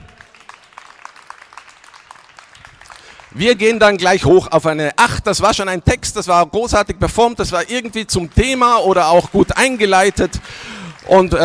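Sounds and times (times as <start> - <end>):
audience applause at medium intensity: 0.0 - 4.3, 7.9 - 11.4
speech: 3.3 - 11.4.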